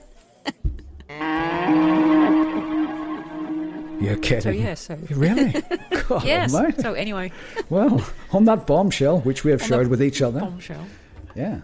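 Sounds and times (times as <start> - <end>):
laughter: 0.4 - 8.5, 9.3 - 10.2
cow mooing: 1.2 - 4.8
speech: 4.0 - 11.6.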